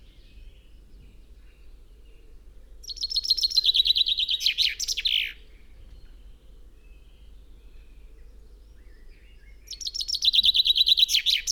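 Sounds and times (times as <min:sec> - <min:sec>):
Common chaffinch Fringilla coelebs singing a descending series with terminal flourish: 0:02.8 - 0:05.4, 0:09.7 - 0:11.5.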